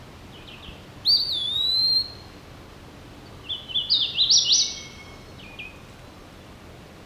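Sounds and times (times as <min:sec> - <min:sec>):
hooded warbler song: 0:00.3 - 0:02.4, 0:03.2 - 0:05.9.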